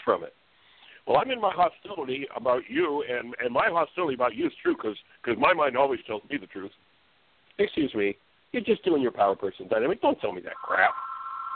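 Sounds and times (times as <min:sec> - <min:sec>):
speech: 0:00.1 - 0:00.4, 0:01.0 - 0:06.8, 0:07.6 - 0:11.1
steady electronic telephone ring tone: 0:10.6 - 0:11.5.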